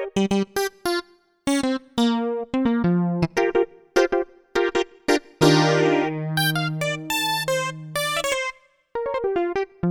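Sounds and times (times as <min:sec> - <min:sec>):
plucky synthesizer sound: 0:00.2 - 0:03.5, 0:05.4 - 0:08.6, 0:09.1 - 0:09.8.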